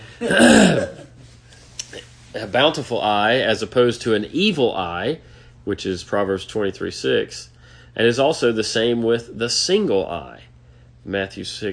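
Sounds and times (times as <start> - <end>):
speech: 0.2 - 0.9, 2.3 - 11.7
throat clearing: 0.2 - 1.1.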